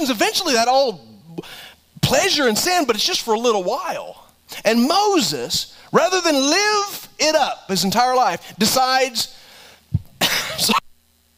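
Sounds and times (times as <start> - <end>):
speech: 0.0 - 9.4, 10.3 - 10.8
man coughing while recovering from a lingering cough: 10.2 - 10.9.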